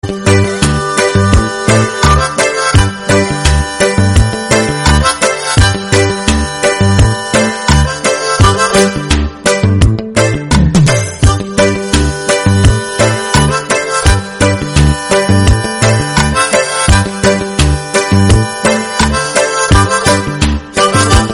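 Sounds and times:
banjo background music ringtone: 0.0 - 21.3.

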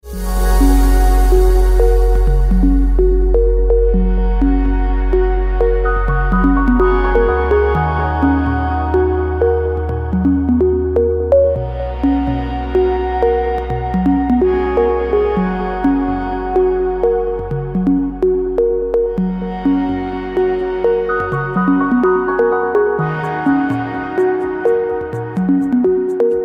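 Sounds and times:
chillout instrumental ringtone: 0.1 - 26.4.

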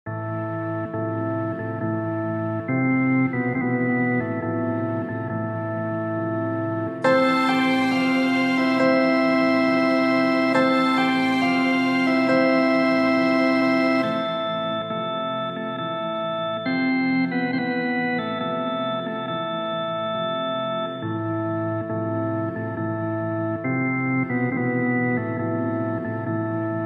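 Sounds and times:
sad music ringtone: 0.1 - 26.8.

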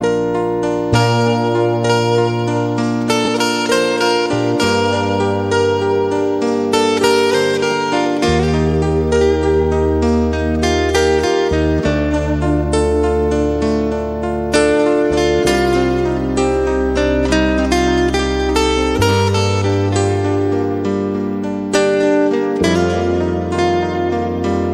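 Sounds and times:
peaceful love background music ringtone: 0.0 - 24.7.

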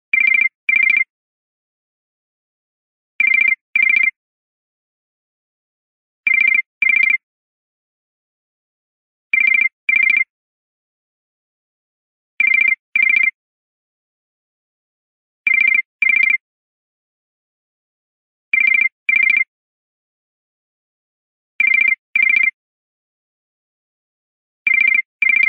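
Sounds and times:
Nokia phone ringtone: 0.2 - 1.1, 3.2 - 4.2, 6.3 - 7.2, 9.4 - 10.3, 12.4 - 13.3, 15.5 - 16.4, 18.6 - 19.5, 21.6 - 22.6, 24.7 - 25.4.

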